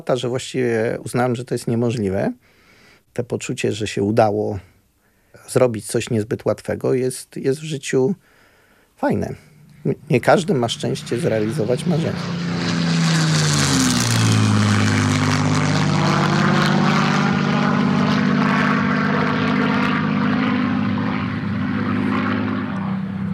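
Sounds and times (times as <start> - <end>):
speech: 0.0 - 2.6, 3.2 - 4.7, 5.3 - 8.3, 9.0 - 12.5
1944 Taylorcraft Auster propeller airplane engine droning in flight: 9.2 - 23.3.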